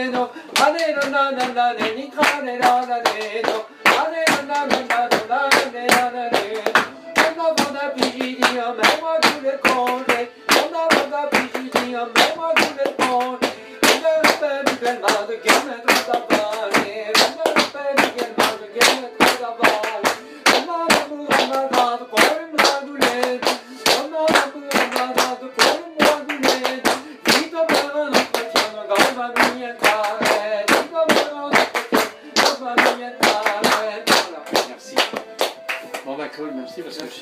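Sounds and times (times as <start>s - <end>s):
rhythmic Breton dance music: 0.1s - 36.2s.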